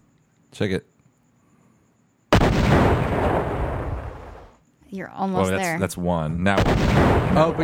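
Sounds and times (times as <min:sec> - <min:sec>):
speech: 0:00.6 - 0:00.9, 0:04.9 - 0:07.6
explosion: 0:02.3 - 0:04.5, 0:06.6 - 0:07.6.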